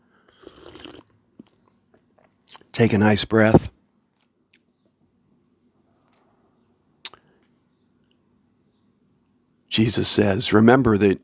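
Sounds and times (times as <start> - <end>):
wet slurping sip of kava: 0.3 - 1.1
soft swallow or click: 0.4 - 1.1
speech: 2.5 - 3.8, 9.8 - 11.2.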